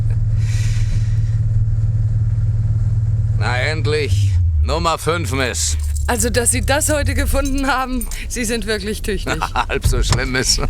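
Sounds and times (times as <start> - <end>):
taxi engine drone while driving slowly: 0.0 - 10.6
speech: 3.7 - 10.6
laughter: 5.5 - 10.6.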